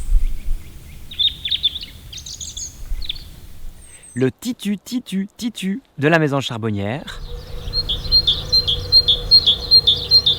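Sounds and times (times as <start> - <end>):
European robin singing: 0.0 - 4.2, 7.0 - 10.3
speech: 4.2 - 7.4
faint low rumble: 7.1 - 10.3.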